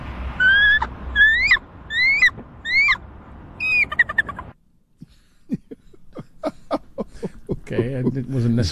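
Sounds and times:
voice imitating bald eagle call with shrill rising whistled shrieks: 0:00.4 - 0:03.0, 0:03.6 - 0:04.6
laughter: 0:05.1 - 0:08.6
speech: 0:07.8 - 0:08.7.

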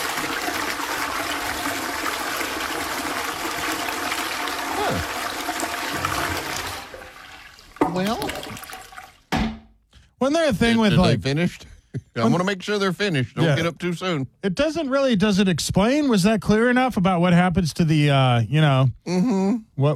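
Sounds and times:
water gurgling and trickling during bowl self-cleaning cycle: 0:00.0 - 0:09.3
toilet flushing solid and liquid waste away: 0:00.0 - 0:09.4
speech: 0:08.0 - 0:08.6, 0:10.3 - 0:19.9.

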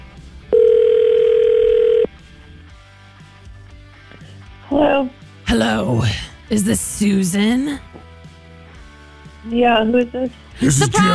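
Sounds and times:
phone ringback tone on an outgoing call: 0:00.5 - 0:02.1
speech: 0:05.0 - 0:08.0, 0:09.5 - 0:11.1.

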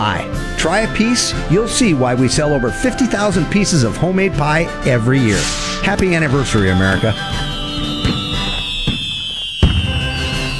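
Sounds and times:
speech: 0:00.0 - 0:08.0
high whistling tone of fireworks: 0:05.2 - 0:10.5
fireworks booming: 0:05.3 - 0:10.5.

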